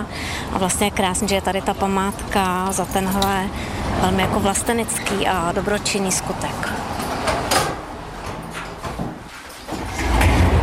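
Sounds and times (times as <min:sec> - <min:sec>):
speech: 0:00.5 - 0:06.8
old door opening and closing: 0:06.9 - 0:10.6.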